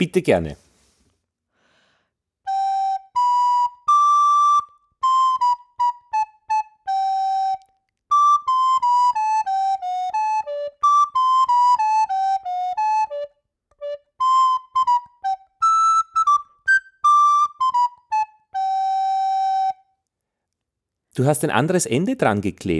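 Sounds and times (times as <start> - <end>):
speech: 0.0 - 0.6, 21.2 - 22.7
simple song melody played as a single high line of notes: 2.4 - 19.9.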